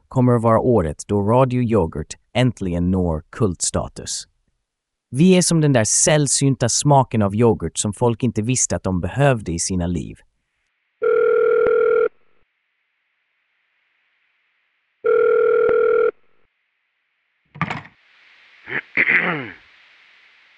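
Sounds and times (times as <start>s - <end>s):
speech: 0.2s - 4.3s, 5.1s - 10.3s
telephone line ring tones as a listener calls in: 11.0s - 12.2s, 15.0s - 16.2s.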